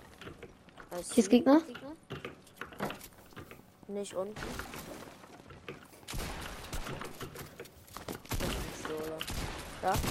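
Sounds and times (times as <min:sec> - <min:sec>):
speech: 0:00.9 - 0:01.9, 0:03.9 - 0:04.7, 0:09.0 - 0:10.0
video game assault rifle gunfire: 0:06.1 - 0:07.4, 0:08.1 - 0:10.0.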